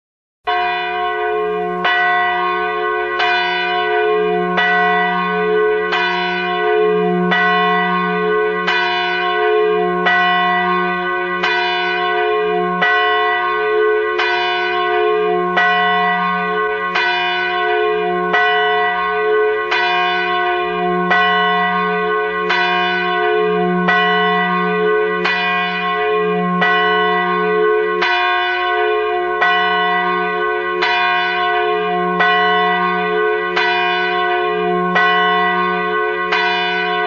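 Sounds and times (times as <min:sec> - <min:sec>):
single bell: 0:00.5 - 0:37.0.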